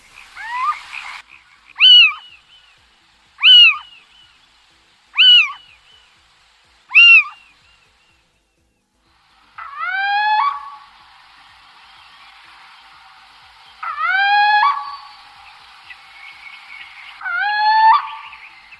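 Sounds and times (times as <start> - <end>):
faint hiss: 0.0 - 18.7
little owl territorial song: 0.1 - 2.8, 3.4 - 4.3, 5.1 - 6.0, 6.9 - 7.7, 9.6 - 11.0, 12.0 - 18.7.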